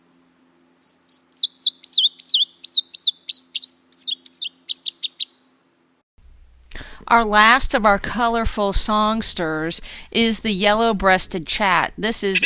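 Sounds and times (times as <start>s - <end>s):
indigo bunting singing: 0.6s - 5.4s, 12.2s - 12.4s
speech: 7.1s - 12.4s.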